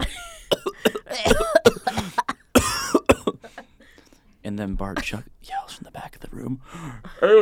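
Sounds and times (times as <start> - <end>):
teacher coughing in a classroom: 0.0 - 3.5
speech: 4.6 - 5.6, 6.4 - 7.3.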